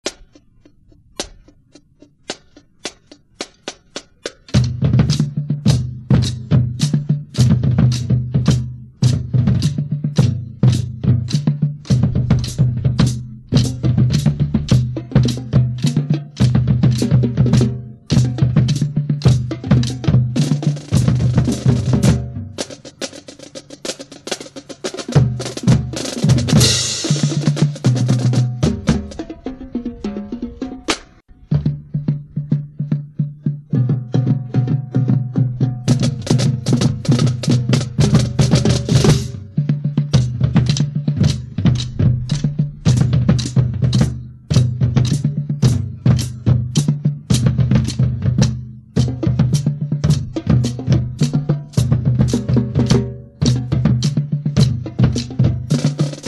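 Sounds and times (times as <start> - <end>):
drumline playing: 0.0 - 56.2.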